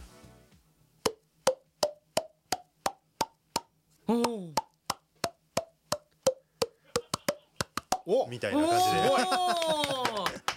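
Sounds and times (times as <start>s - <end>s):
person making pitched mouth pops playing a do-re-mi scale: 1.1s - 8.2s
speech: 8.1s - 10.5s
laughter: 8.4s - 10.5s.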